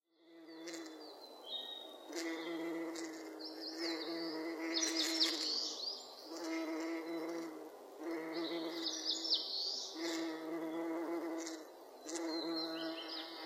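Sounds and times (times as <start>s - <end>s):
bumblebee: 0.2s - 1.2s, 2.0s - 13.4s.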